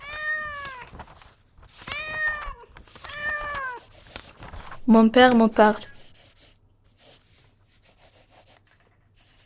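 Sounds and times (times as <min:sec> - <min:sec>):
pet cat meowing at home: 0:01.9 - 0:03.8
speech: 0:04.9 - 0:05.9.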